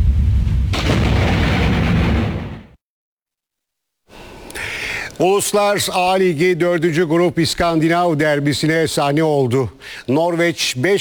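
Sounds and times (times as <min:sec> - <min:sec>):
lightning strike and thunder near a truck driving in rain in Utah: 0:00.0 - 0:02.8
speech: 0:05.2 - 0:10.9.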